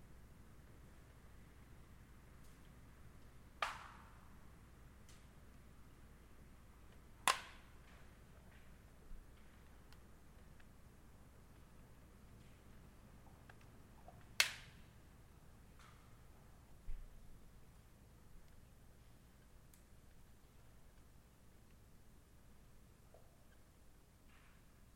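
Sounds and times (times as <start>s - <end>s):
low steady hum outside a rural home: 0.0s - 24.9s
sharp bright cracks or snaps: 3.6s - 4.2s, 14.4s - 14.9s.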